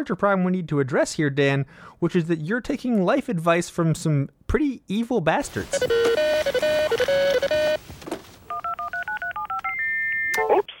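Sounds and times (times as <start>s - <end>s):
speech: 0.0s - 7.9s
phone alarm beeping: 5.4s - 7.8s, 8.5s - 10.7s.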